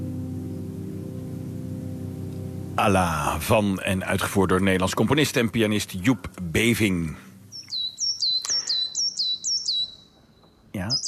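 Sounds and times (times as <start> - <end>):
speech: 2.8 - 7.2
coal tit song: 3.9 - 11.0.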